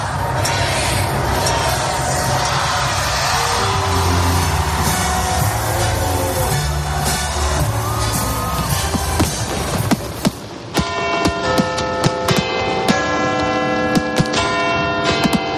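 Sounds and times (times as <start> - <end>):
festive street crowd noise: 0.0 - 15.5
sharp bangs of fireworks: 2.6 - 11.8
bright bell chimes on New Year's Eve: 10.8 - 15.5.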